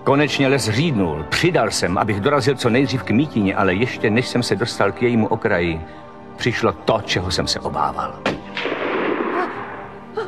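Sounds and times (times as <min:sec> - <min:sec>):
speech: 0:00.0 - 0:08.4
rifle shot: 0:08.3 - 0:10.1
long rumbling echo of rifle shot: 0:08.6 - 0:10.2.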